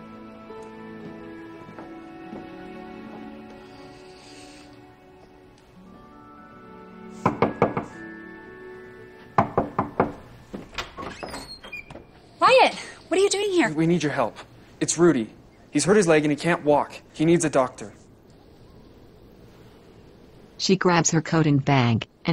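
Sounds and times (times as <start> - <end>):
sharp rapid knocking on a door: 7.2 - 8.0, 9.4 - 10.3
speech: 12.7 - 18.0, 20.6 - 22.3.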